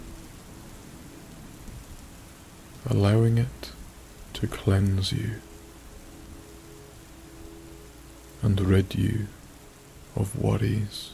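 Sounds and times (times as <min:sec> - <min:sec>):
steady rain falling on a warm summer night: 0:00.0 - 0:11.1
speech: 0:02.8 - 0:03.8, 0:04.4 - 0:05.5, 0:08.4 - 0:09.4, 0:10.2 - 0:11.1.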